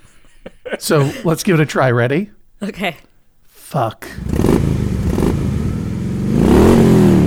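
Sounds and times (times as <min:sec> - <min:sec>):
laughter: 0:00.0 - 0:04.8
speech: 0:00.8 - 0:03.1, 0:03.7 - 0:04.3
Harley motorcycle engine idling and revving: 0:04.2 - 0:07.2.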